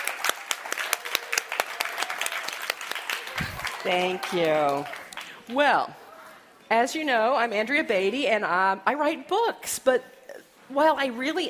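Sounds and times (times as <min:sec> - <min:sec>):
audience applause: 0:00.0 - 0:05.3
speech: 0:03.8 - 0:06.0, 0:06.7 - 0:11.4.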